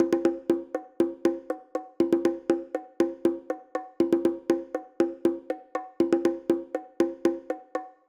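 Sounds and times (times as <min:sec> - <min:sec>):
bongo pattern: 0:00.0 - 0:08.0.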